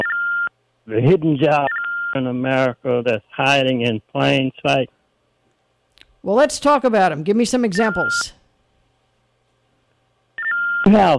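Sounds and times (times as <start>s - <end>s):
telephone electronic dial-tone beeps: 0.0s - 0.5s, 10.4s - 10.9s
speech: 0.9s - 5.0s, 6.2s - 8.4s, 10.9s - 11.1s.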